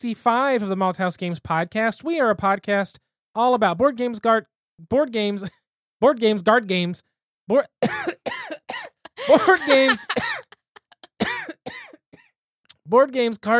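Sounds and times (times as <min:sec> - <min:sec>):
speech: 0:00.0 - 0:08.3, 0:09.3 - 0:10.4, 0:12.9 - 0:13.5
person with strep throat clearing throat: 0:07.8 - 0:10.5, 0:11.2 - 0:12.3
person with strep throat coughing: 0:07.8 - 0:10.5, 0:11.2 - 0:12.3
laughter: 0:09.0 - 0:11.2.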